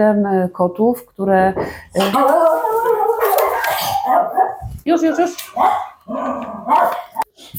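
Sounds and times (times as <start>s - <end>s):
speech: 0.0s - 2.6s, 4.8s - 7.5s
dogs barking and growling: 2.0s - 7.4s.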